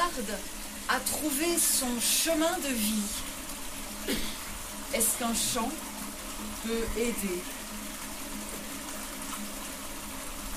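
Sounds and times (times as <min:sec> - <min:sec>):
flowing water: 0:00.0 - 0:10.5
speech: 0:00.2 - 0:03.3, 0:04.0 - 0:07.6.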